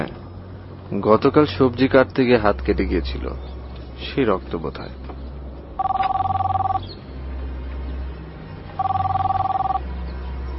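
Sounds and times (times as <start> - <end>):
low drone: 0.0 - 10.5
speech: 0.9 - 5.1
telephone ringing with an incoming call: 5.8 - 6.8, 8.8 - 9.8.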